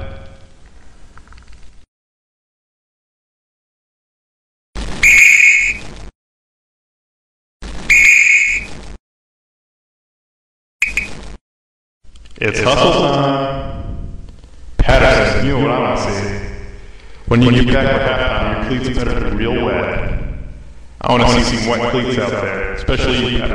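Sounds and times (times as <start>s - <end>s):
shrill whistle blasts: 5.0s - 5.8s, 7.9s - 8.7s
speech: 12.4s - 13.6s, 15.4s - 16.4s, 17.3s - 20.2s, 21.0s - 23.5s
low rumbling noise: 12.4s - 23.5s.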